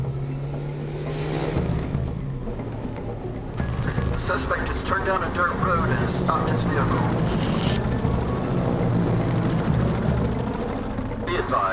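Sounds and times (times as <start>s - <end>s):
car engine revving during a chase: 0.0s - 11.7s
rushing broadband noise: 3.6s - 8.2s
speech: 4.3s - 7.8s.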